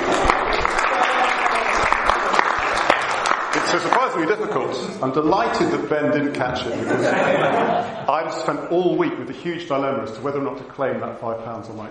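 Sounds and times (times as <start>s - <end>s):
audience applause: 0.0s - 5.6s
laughter: 3.6s - 9.1s
speech: 4.1s - 11.8s.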